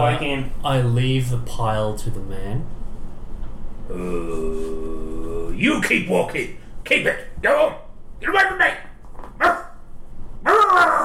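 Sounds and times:
speech: 0.0 - 2.8, 3.9 - 8.8
man imitating dog barks: 9.4 - 9.8, 10.4 - 11.0.

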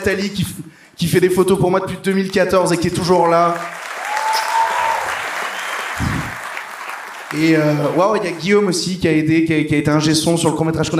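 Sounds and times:
speech: 0.0 - 3.8, 7.4 - 10.9
audience applause: 2.8 - 8.8.

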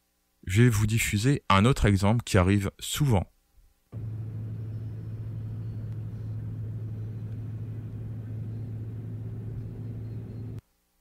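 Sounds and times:
speech: 0.5 - 3.3
constant car engine drone: 4.0 - 10.6
low rumble of road noise inside a moving car: 4.0 - 10.6.

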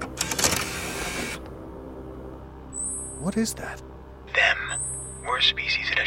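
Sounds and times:
motorized monitor lowering from the ceiling of a conference room: 0.2 - 1.5
speech: 3.3 - 4.6, 5.4 - 6.0.

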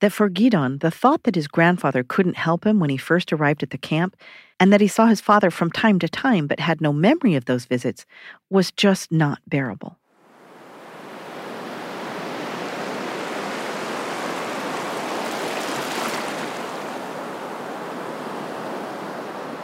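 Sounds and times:
speech: 0.0 - 10.0
Mediterranean Sea waves lapping and washing at Tel Aviv on a warm autumn afternoon: 10.2 - 19.6.

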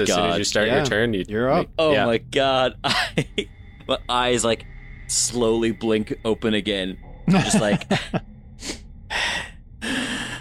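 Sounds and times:
speech: 0.0 - 8.8
laughter: 2.8 - 3.4, 7.3 - 8.2
person gasping and breathing hard: 8.6 - 10.4.

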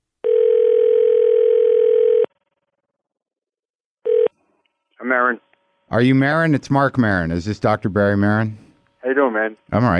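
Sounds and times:
telephone dial tone while placing a call: 0.2 - 2.4, 4.1 - 4.3
speech: 5.2 - 8.6, 9.2 - 9.9.

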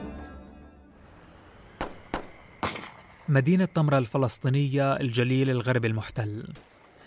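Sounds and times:
gunfire shots: 1.8 - 3.0
speech: 3.3 - 6.8.

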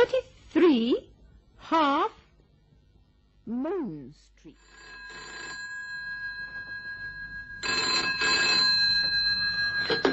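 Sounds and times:
speech: 0.8 - 1.1, 1.7 - 2.2, 3.5 - 4.9
phone box telephone bell ringing: 4.6 - 10.1.

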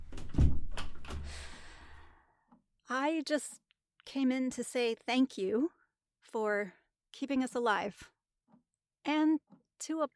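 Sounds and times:
light knocks and rattles: 0.0 - 1.4
door swinging shut with a solid low thud: 0.0 - 1.6
speech: 2.9 - 8.1, 9.0 - 10.1.

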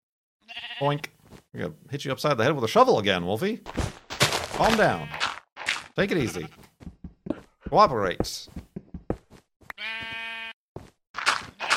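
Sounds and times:
sheep bleating: 0.4 - 1.0, 4.6 - 5.4, 6.1 - 6.6, 9.7 - 10.6, 11.6 - 11.7
speech: 0.8 - 3.9, 4.6 - 5.2, 6.0 - 6.7, 7.7 - 8.6.

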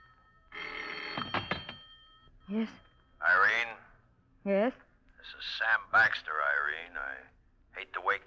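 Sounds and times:
telephone bell ringing: 0.0 - 3.3
speech: 2.5 - 3.7, 4.4 - 8.2.

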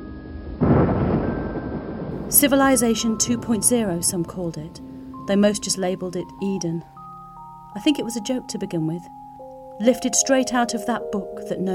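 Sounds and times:
thunder rumbling: 0.0 - 7.6
quiet hiss: 2.2 - 10.0
speech: 2.3 - 6.9, 7.7 - 9.2, 9.8 - 11.7.

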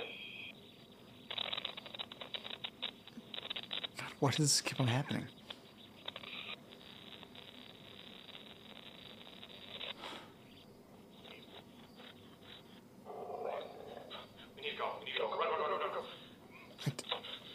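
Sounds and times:
low murky noise: 0.0 - 17.5
speech: 4.2 - 5.4
dog vocalizing in drawn-out whining barks: 11.3 - 14.4.

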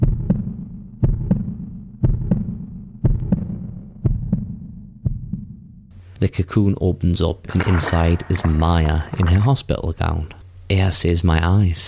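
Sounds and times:
heartbeat with paired lub-dub thumps: 0.0 - 5.8
speech: 6.2 - 11.8.

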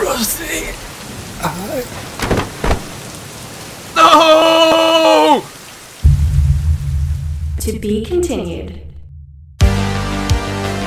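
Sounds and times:
heavy rain: 0.0 - 8.9
loud drawn-out shout: 3.9 - 5.5
low rumbling surge: 6.0 - 9.7
speech: 7.7 - 8.8.

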